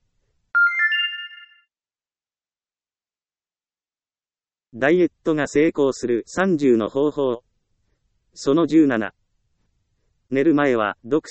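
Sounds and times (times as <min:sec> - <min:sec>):
mobile phone ringtone electronic melody: 0:00.6 - 0:01.7
speech: 0:04.7 - 0:07.5, 0:08.4 - 0:09.2, 0:10.3 - 0:11.2.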